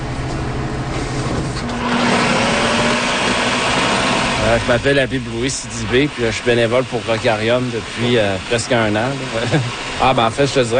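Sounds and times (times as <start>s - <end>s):
steady whine: 0.0s - 10.7s
food processor slicing food in a community kitchen: 1.6s - 10.7s
speech: 4.5s - 10.7s.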